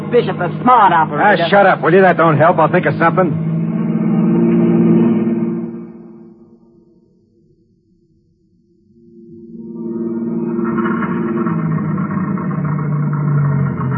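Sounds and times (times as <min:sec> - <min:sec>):
car engine running then dying out of gas: 0:00.0 - 0:06.2, 0:10.1 - 0:13.9
speech: 0:00.1 - 0:03.5.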